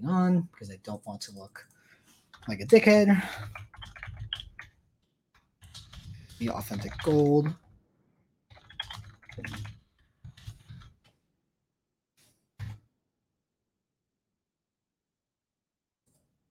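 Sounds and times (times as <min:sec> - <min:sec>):
speech: 0:00.0 - 0:01.8, 0:02.4 - 0:04.2, 0:06.4 - 0:07.6, 0:09.4 - 0:09.7
typing on a computer keyboard: 0:02.3 - 0:04.8, 0:05.4 - 0:07.7, 0:08.5 - 0:10.9.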